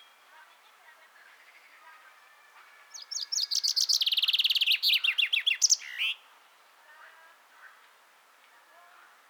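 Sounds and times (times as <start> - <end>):
common chaffinch Fringilla coelebs song ending: 2.9 - 6.2.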